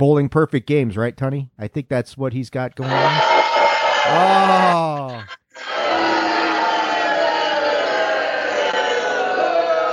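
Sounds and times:
speech: 0.0 - 3.4, 4.1 - 5.9
large crowd booing: 2.8 - 9.9.

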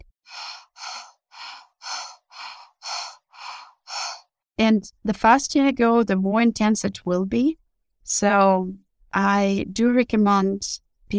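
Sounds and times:
fast deep breathing in and out through the mouth: 0.0 - 4.3
speech: 4.6 - 11.1.

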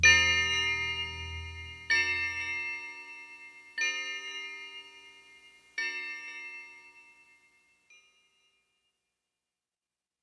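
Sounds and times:
low rumble: 0.0 - 2.6
bell tolling in the night: 0.0 - 4.9.

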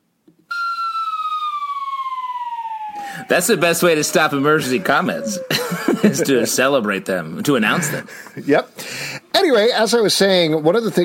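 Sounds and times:
loud pulsing emergency siren: 0.5 - 6.3
speech: 3.2 - 11.0
laughter: 4.0 - 8.5.

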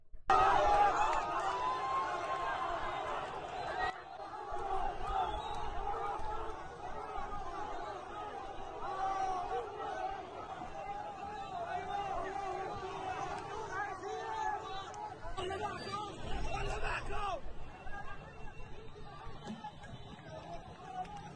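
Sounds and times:
raised shouts from crowd in a Gaza street: 0.3 - 17.4
dense crowd chattering and cheering in a street in Gaza: 0.3 - 21.3.

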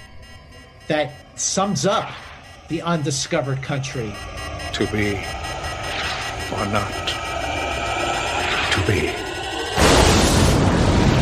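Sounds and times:
speech: 0.9 - 5.4, 6.5 - 7.2, 8.8 - 9.2
sci-fi starship explosion from torpedo fire: 5.2 - 11.1.

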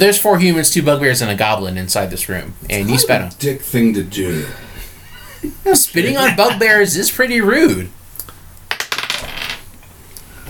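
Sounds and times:
speech: 0.0 - 4.7, 5.4 - 8.0
laughter: 2.7 - 3.3, 4.2 - 6.8
dice clattering onto a hard table: 8.7 - 9.7.

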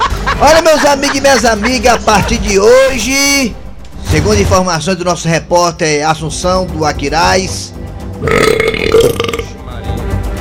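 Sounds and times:
laughter: 0.0 - 2.7
speech: 0.4 - 9.2
long loud drawn-out burp: 8.2 - 9.5.

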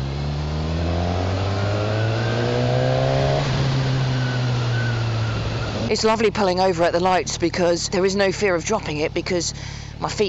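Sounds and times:
NC750 motorcycle engine revving: 0.0 - 6.6
speech: 5.9 - 10.2.

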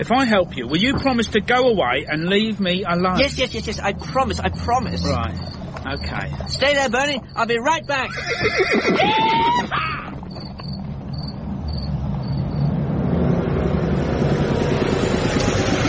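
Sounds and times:
speech: 0.0 - 10.0
horse-drawn stagecoach rolling: 0.0 - 12.7, 13.6 - 15.8
faint rhythmic chirping: 2.9 - 12.7
horse whinnying: 7.9 - 10.6.

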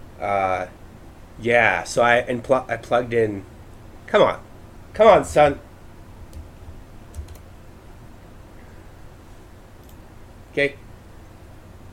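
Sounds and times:
steady low hum: 0.0 - 11.9
speech: 0.2 - 0.8, 1.4 - 3.5, 4.1 - 5.7, 10.6 - 10.8
computer keyboard keys clicking: 7.1 - 7.5.

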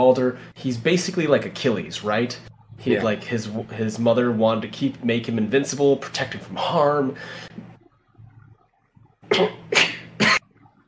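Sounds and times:
speech: 0.0 - 7.5, 9.3 - 9.6
low rumbling: 1.9 - 5.4, 7.2 - 9.3
person coughing: 9.3 - 10.4.

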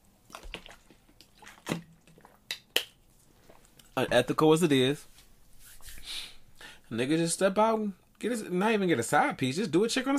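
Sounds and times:
person drinking water with wet gulps and swallowing clicks: 0.2 - 2.8
speech: 4.0 - 5.1, 6.9 - 10.1.

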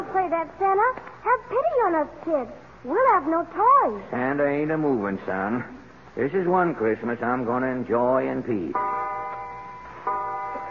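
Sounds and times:
speech: 0.2 - 8.9
clock striking twelve at midnight on Christmas Day: 8.8 - 10.6.

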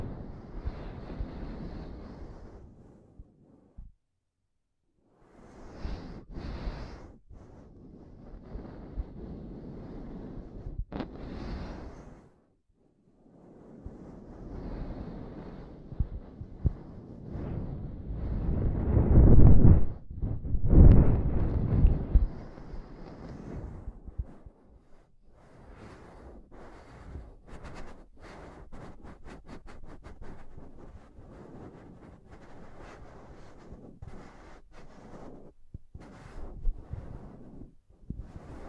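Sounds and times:
heavy scratching on a microphone: 0.0 - 3.0, 5.5 - 12.4, 13.5 - 38.6
rumbling rubs on a microphone: 18.4 - 38.6.

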